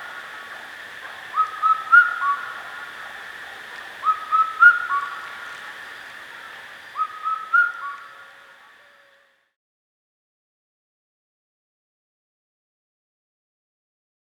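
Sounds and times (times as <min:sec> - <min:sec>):
steady background hum: 0:00.0 - 0:08.9
Indian cuckoo giving whistled multi-note phrases: 0:01.3 - 0:02.6, 0:04.0 - 0:05.3, 0:07.0 - 0:09.3.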